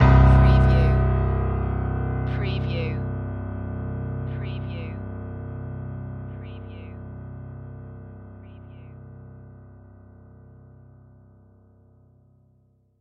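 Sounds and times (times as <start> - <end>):
piano stab production element: 0.0 - 11.8.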